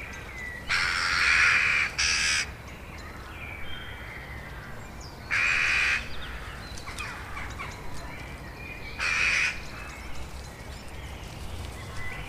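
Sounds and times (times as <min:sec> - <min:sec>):
Eurasian jackdaw giving harsh noisy calls: 0:00.7 - 0:02.6, 0:05.3 - 0:07.8, 0:09.0 - 0:09.9.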